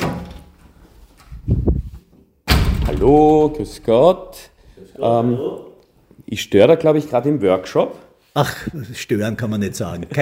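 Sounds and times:
office door opening in a newspaper editorial room: 0:02.5 - 0:04.3
speech: 0:03.0 - 0:05.7, 0:06.3 - 0:10.2.

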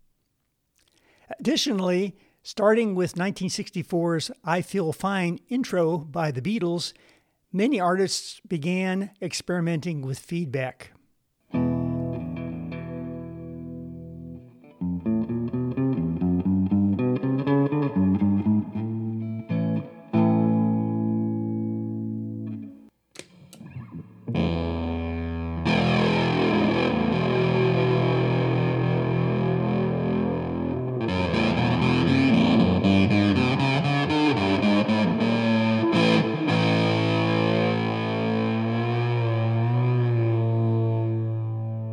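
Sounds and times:
speech: 0:01.4 - 0:11.0
clean electric guitar notes: 0:11.5 - 0:22.9, 0:23.6 - 0:41.9.

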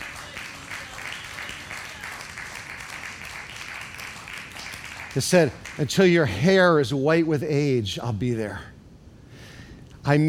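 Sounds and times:
audience applause in a large room: 0:00.0 - 0:06.0
speech: 0:05.2 - 0:08.7, 0:10.0 - 0:10.2.

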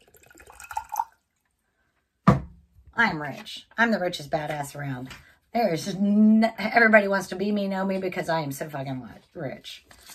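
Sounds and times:
water pouring into a container: 0:00.0 - 0:01.5
speech: 0:03.0 - 0:10.1.

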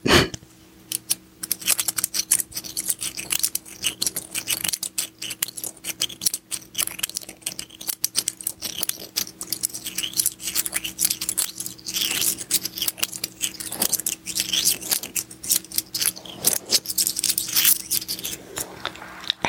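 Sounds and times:
quarter coins rubbed and scraped together: 0:00.9 - 0:19.4.

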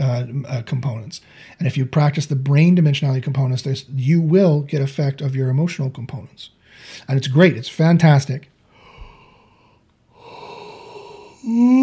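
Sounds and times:
speech: 0:00.2 - 0:08.5, 0:11.4 - 0:11.8
long breathy yawn: 0:10.2 - 0:11.8
loud voiced groan: 0:10.2 - 0:11.8.

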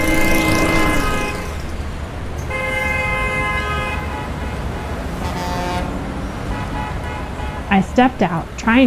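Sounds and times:
car horns honking in long blasts: 0:00.0 - 0:08.2
busy road traffic rumbling: 0:00.0 - 0:08.8
speech: 0:07.8 - 0:08.8.

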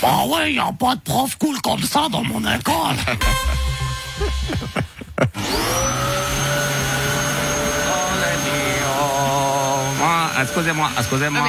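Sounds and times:
speech: 0:00.0 - 0:06.1, 0:10.4 - 0:11.4
laughter: 0:02.2 - 0:06.0
vacuum cleaner running: 0:05.4 - 0:11.4.

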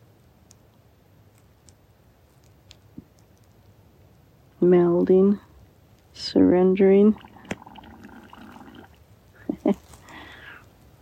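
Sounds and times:
speech: 0:04.6 - 0:05.4, 0:06.2 - 0:07.3
water bubbling and gurgling: 0:07.0 - 0:09.0.

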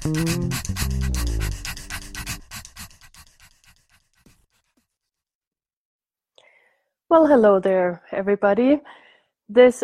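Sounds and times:
low tonal backing: 0:00.0 - 0:02.5
dog panting: 0:00.0 - 0:04.7
speech: 0:07.1 - 0:09.8.

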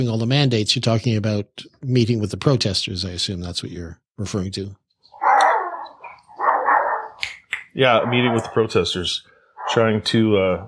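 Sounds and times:
speech: 0:00.0 - 0:04.8, 0:07.7 - 0:10.6
dog yipping: 0:05.1 - 0:07.3, 0:07.9 - 0:08.7
dog barking: 0:05.2 - 0:07.2, 0:07.9 - 0:09.0, 0:09.6 - 0:10.2.

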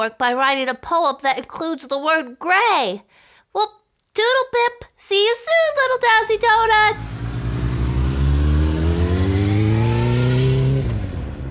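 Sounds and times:
speech: 0:00.0 - 0:07.3
motorbike engine revving and pulling away: 0:06.4 - 0:11.5.

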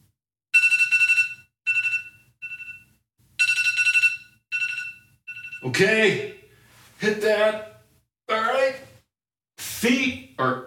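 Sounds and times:
electronic alarm beeping marking the start of a timed session: 0:00.6 - 0:06.6
speech: 0:05.6 - 0:06.4, 0:07.0 - 0:07.7, 0:09.8 - 0:10.6.

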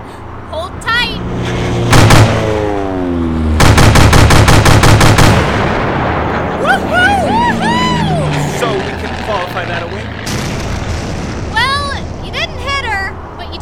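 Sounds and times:
steady engine drone: 0:00.0 - 0:13.5
rapid gunfire during an aerial chase: 0:01.9 - 0:02.6, 0:03.6 - 0:06.0
warbling, whistling tones: 0:06.4 - 0:10.2.

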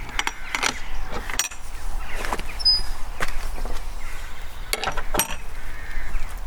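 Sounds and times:
metal gate clinking and rattling as it is handled: 0:00.0 - 0:01.7, 0:04.7 - 0:05.6
outdoor wind: 0:00.0 - 0:06.4
footsteps onto a permissive footpath: 0:01.6 - 0:04.5.

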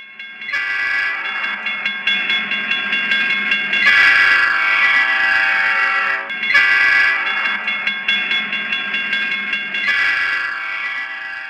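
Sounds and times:
low rumbling of an approaching train: 0:00.0 - 0:11.4
train horn blasting at a road railroad crossing: 0:00.5 - 0:01.9, 0:03.8 - 0:07.9, 0:09.8 - 0:11.4.

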